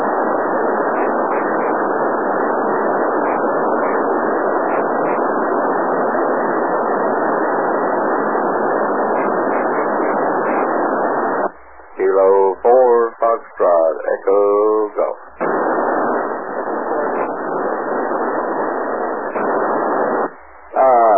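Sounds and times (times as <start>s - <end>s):
hissing narrow-band radio channel static: 0.0s - 21.1s
weak distorted voice of an amateur ham radio reply: 12.0s - 15.6s, 16.6s - 18.4s, 20.7s - 21.1s.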